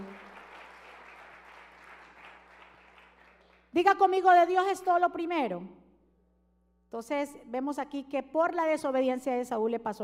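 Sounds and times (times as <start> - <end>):
audience applauding loudly: 0.0 - 3.6
speech: 3.8 - 5.8, 6.9 - 10.0.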